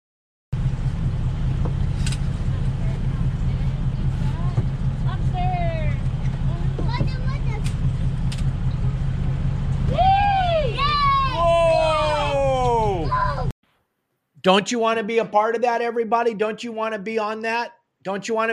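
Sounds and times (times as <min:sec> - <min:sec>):
fishing boat engine droning at sea: 0:00.6 - 0:13.5
loud swooping cries: 0:09.8 - 0:13.5
speech: 0:14.4 - 0:18.5.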